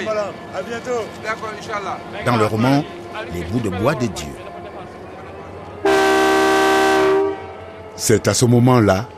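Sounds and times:
speech: 0.0s - 4.5s, 8.0s - 9.1s
train whistle on the Dakar–Bamako railway line: 5.8s - 7.6s.

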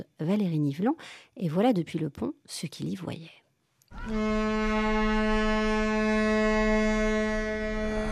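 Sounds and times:
speech: 0.0s - 6.3s
cruise ship horn blast on departure on a river: 4.0s - 8.1s.

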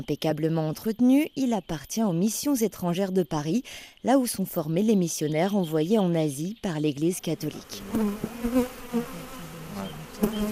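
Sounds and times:
speech: 0.0s - 8.7s
honeybees buzzing around five hives in a Paris park garden: 7.2s - 10.5s.

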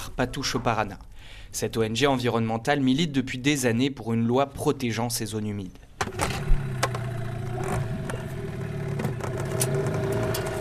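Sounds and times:
speech: 0.2s - 6.6s
motorboat engine droning: 6.1s - 10.5s.

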